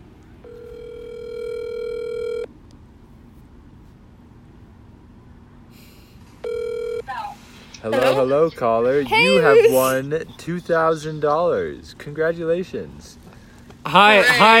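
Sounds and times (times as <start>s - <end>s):
ringback tone of an outgoing telephone call: 0.4s - 2.5s, 6.4s - 7.2s
speech: 7.8s - 13.2s, 13.9s - 14.5s.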